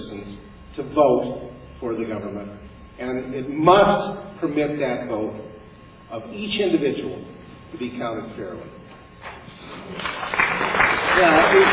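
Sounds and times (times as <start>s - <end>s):
speech: 0.8s - 5.5s, 6.1s - 11.7s
audience applause: 9.9s - 11.7s.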